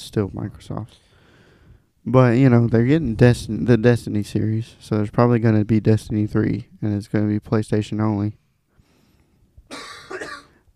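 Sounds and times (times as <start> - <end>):
speech: 0.1 - 1.1, 2.0 - 8.4
person coughing into a microphone: 9.7 - 10.6.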